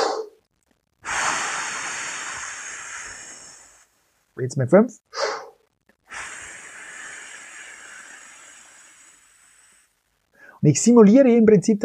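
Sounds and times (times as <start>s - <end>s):
long exhale from a breathing exercise for saxophone practice: 1.0s - 4.0s, 6.1s - 10.6s
speech: 4.4s - 5.2s, 10.6s - 11.8s.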